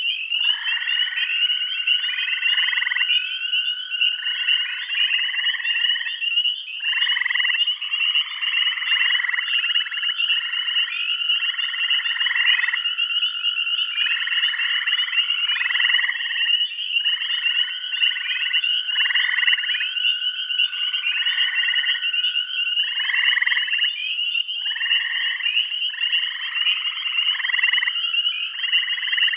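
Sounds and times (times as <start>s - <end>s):
frog chorus of overlapping pulsed buzzy trills in Bath County: 0.0s - 29.3s.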